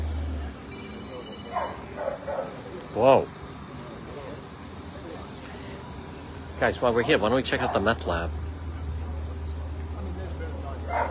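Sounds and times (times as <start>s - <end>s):
steady low rumble of outdoor noise: 0.0s - 11.1s
dog barking: 1.5s - 2.6s, 10.9s - 11.1s
speech: 3.0s - 3.4s, 6.6s - 8.4s.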